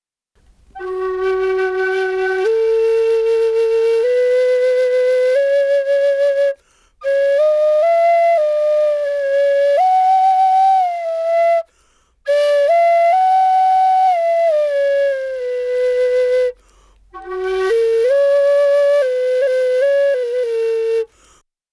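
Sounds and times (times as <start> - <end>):
vintage flute: 0.5 - 21.4.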